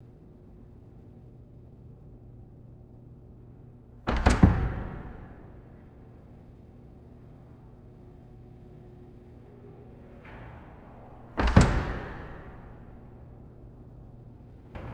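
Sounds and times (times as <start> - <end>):
distant door bumping and closing in reverberant hall: 4.1 - 5.8, 9.7 - 14.9.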